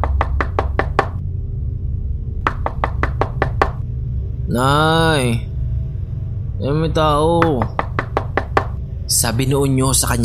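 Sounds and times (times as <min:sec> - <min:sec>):
knocking on a door: 0:00.0 - 0:01.2, 0:02.5 - 0:03.8, 0:07.4 - 0:08.8
low steady rumble: 0:00.0 - 0:10.2
speech: 0:04.5 - 0:05.5, 0:06.6 - 0:07.8, 0:09.1 - 0:10.2.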